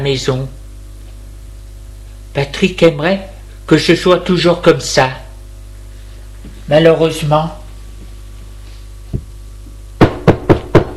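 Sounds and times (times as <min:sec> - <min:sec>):
speech: 0:00.0 - 0:00.6, 0:02.4 - 0:05.2, 0:06.7 - 0:07.6
knocking on a bedroom door in a house: 0:10.0 - 0:10.9.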